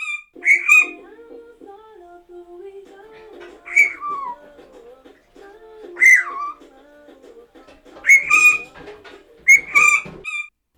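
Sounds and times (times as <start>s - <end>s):
pet bird peeping shrilly: 0.0s - 1.2s, 3.2s - 7.0s, 7.6s - 10.5s
washing machine spin cycle humming: 0.0s - 10.3s.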